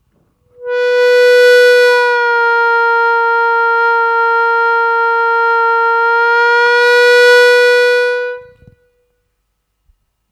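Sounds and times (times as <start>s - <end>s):
harmonica bending a semitone down on the third hole: 0.6s - 8.8s.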